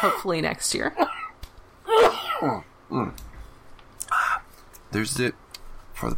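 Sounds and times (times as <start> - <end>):
speech: 0.0 - 1.2, 2.4 - 3.3, 4.9 - 5.4, 6.0 - 6.1
person clearing throat: 1.9 - 3.1.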